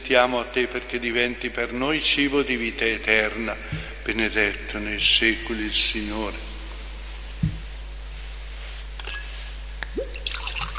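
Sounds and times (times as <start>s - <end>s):
steady low room hum: 0.0s - 10.7s
speech: 0.1s - 6.5s
water dripping into a chalice: 9.8s - 10.7s
water poured into wine in a chalice: 10.0s - 10.7s.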